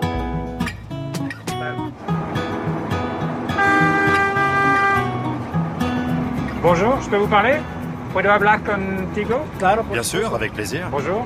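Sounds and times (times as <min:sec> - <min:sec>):
autoferro rail-bus rumbling with engine drone: 0:00.0 - 0:11.2
rail-bus horn toot: 0:03.4 - 0:05.4
speech: 0:06.6 - 0:11.2.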